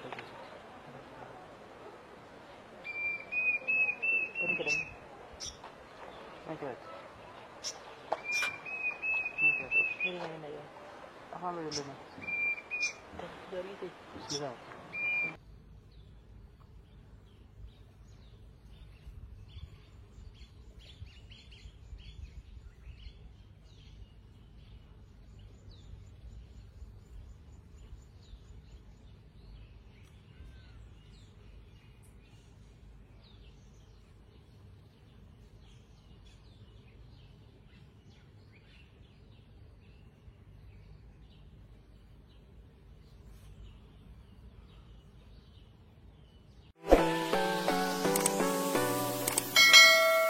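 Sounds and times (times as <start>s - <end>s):
bronzed cuckoo calling: 2.8s - 5.0s, 6.8s - 10.4s, 11.8s - 13.4s, 14.2s - 15.4s, 46.9s - 50.2s.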